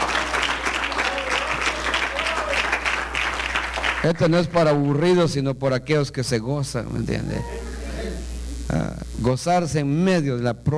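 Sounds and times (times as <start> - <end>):
church congregation applause: 0.0 - 4.8
speech: 4.0 - 7.6, 8.7 - 10.7.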